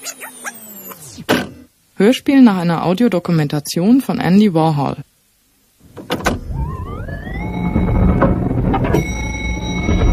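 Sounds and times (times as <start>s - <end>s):
elevator mechanical hum and whine: 0.0s - 1.7s, 5.8s - 10.1s
speech: 2.0s - 5.1s
sustained high tone: 6.5s - 10.1s.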